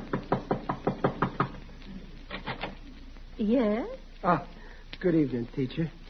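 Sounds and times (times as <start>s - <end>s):
man tapping nervously at an apartment door: 0.0s - 1.6s
speech: 3.4s - 6.0s.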